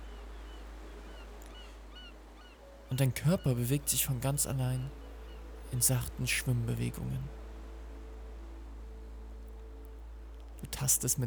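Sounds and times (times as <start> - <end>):
seagulls calling: 0.0 - 5.5
speech: 2.9 - 5.0, 5.7 - 7.4, 10.8 - 11.2.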